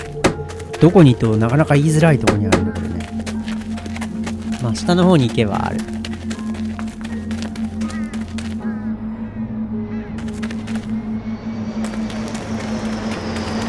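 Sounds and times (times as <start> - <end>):
speech: 0.8 - 3.2, 4.6 - 6.0
airplane engine droning overhead: 2.7 - 13.6.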